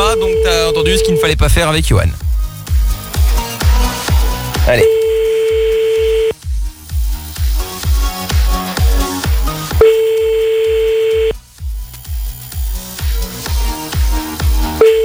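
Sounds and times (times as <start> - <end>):
ringback tone of an outgoing telephone call: 0.0 - 1.2, 4.8 - 6.3, 9.8 - 11.4, 14.8 - 15.0
music with a regular thumping beat: 0.0 - 15.0
speech: 0.2 - 2.4, 4.7 - 5.0.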